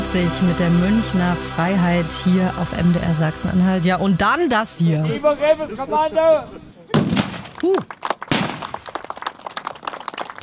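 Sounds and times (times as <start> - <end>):
speech: 0.1 - 6.7, 7.6 - 8.0
cannons firing booming blasts: 6.9 - 7.6, 8.3 - 8.8.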